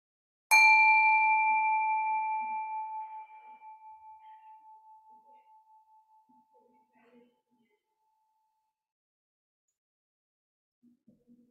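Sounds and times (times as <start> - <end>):
meditation bell ringing: 0.5 - 6.7.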